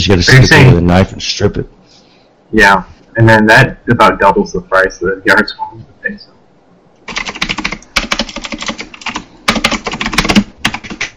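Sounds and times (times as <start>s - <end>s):
speech: 0.0s - 1.8s, 2.5s - 6.4s
mechanical keyboard typing: 7.1s - 11.1s.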